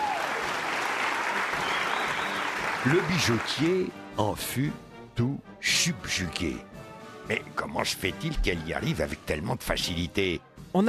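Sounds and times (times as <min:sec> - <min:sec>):
audience applause after a performance: 0:00.0 - 0:03.9
speech: 0:02.8 - 0:06.7, 0:07.3 - 0:10.8.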